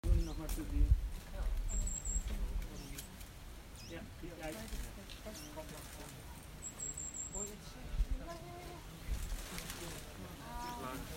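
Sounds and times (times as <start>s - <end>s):
goldcrest leaf warbler: 0.0s - 11.1s.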